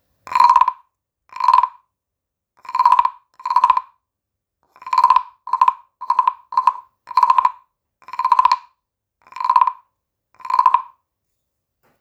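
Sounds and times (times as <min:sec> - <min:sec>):
medium toy frog animal toy: 0:00.3 - 0:01.8, 0:02.6 - 0:04.0, 0:04.7 - 0:11.0.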